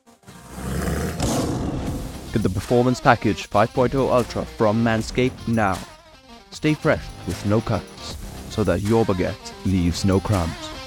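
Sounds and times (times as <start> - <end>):
lion roaring: 0.3 - 2.1
speech: 2.3 - 5.9, 6.5 - 10.6.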